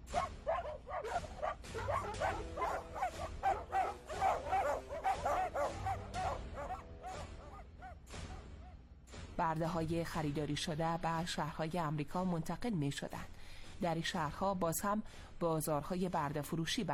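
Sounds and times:
dogs barking and yipping on a shore: 0:00.1 - 0:08.5
speech: 0:09.5 - 0:16.9.

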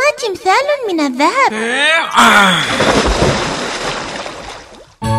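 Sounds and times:
speech: 0:00.2 - 0:03.1
water splashed forcefully onto statues: 0:02.6 - 0:05.0.

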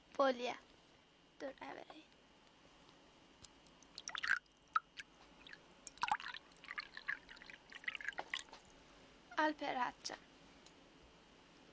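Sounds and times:
speech: 0:00.2 - 0:00.7, 0:01.4 - 0:02.2, 0:09.4 - 0:10.3
water poured into a glass: 0:04.0 - 0:08.5.

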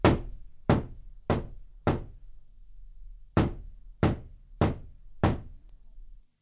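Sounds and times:
sharp knocks on a door: 0:00.0 - 0:02.2, 0:03.4 - 0:05.6.

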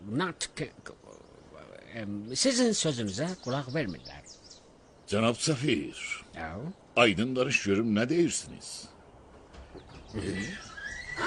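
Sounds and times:
rustling noise: 0:00.0 - 0:11.2
speech: 0:00.1 - 0:01.0, 0:02.0 - 0:04.4, 0:05.1 - 0:08.9, 0:10.1 - 0:11.2
Iranian horse whinnying: 0:10.1 - 0:11.2.

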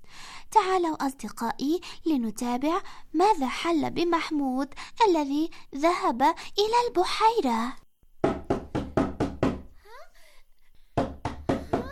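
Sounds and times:
speech: 0:00.6 - 0:07.8
knocking on a wooden door: 0:08.2 - 0:09.7, 0:11.0 - 0:11.8.

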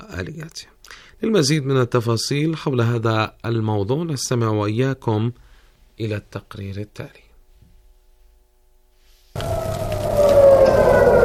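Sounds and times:
speech: 0:00.1 - 0:05.4, 0:06.0 - 0:07.2
air raid siren wailing in a steady tone: 0:09.4 - 0:11.2.

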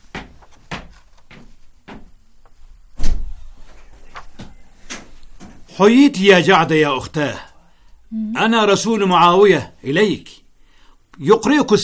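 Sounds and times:
door thump: 0:03.0 - 0:03.3
speech: 0:05.8 - 0:07.5, 0:08.1 - 0:10.4, 0:11.2 - 0:11.8.

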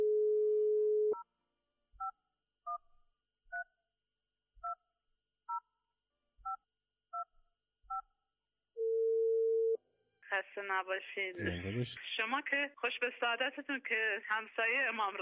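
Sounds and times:
telephone dial tone: 0:00.0 - 0:01.2, 0:08.8 - 0:09.8
long telephone ringing tone: 0:08.8 - 0:09.8
speech: 0:10.6 - 0:15.2.

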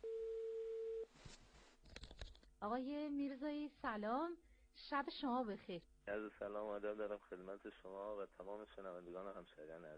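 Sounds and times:
telephone line tone while placing a call to a hospital: 0:00.0 - 0:01.1
speech: 0:02.6 - 0:09.9.

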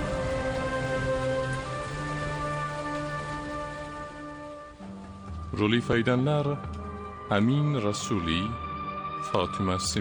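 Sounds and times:
steady rain: 0:00.0 - 0:07.2
sustained musical tones: 0:00.0 - 0:09.9
speech: 0:05.5 - 0:08.6, 0:09.2 - 0:09.9.

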